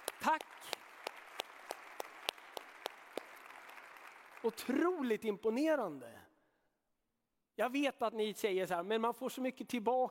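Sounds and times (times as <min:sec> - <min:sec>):
hand clapping in a church: 0:00.0 - 0:04.9
speech: 0:00.2 - 0:00.8, 0:04.4 - 0:06.2, 0:07.6 - 0:10.0.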